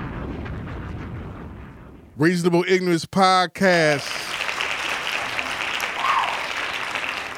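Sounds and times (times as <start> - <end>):
speech: 2.2 - 4.3
crowd clapping: 3.6 - 7.3.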